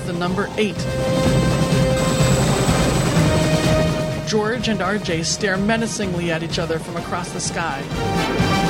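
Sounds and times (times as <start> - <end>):
speech: 0.1 - 1.5, 4.3 - 8.5
helicopter flying: 0.9 - 5.2.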